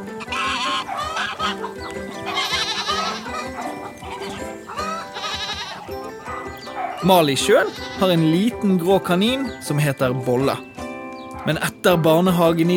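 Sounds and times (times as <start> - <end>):
geese honking in large gardens behind white houses: 0.0 - 8.3
goats bleating in large gardens behind white houses: 0.0 - 8.4
speech: 7.0 - 10.7, 11.4 - 12.7.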